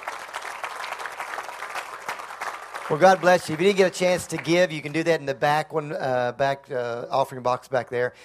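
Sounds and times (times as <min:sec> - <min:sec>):
congregation clapping hands during a church service: 0:00.0 - 0:05.2
speech: 0:02.9 - 0:08.2.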